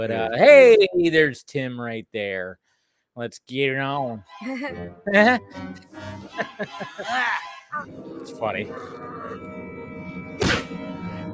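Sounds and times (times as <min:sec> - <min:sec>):
speech: 0:00.0 - 0:09.7
laughter: 0:06.2 - 0:07.9
cartoon-style punch hit: 0:10.4 - 0:10.7.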